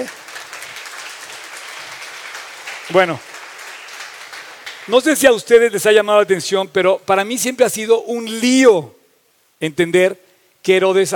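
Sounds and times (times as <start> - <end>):
speech: 0.0 - 0.2, 2.9 - 3.3, 4.8 - 9.0, 9.6 - 11.1
crowd clapping: 0.0 - 6.0.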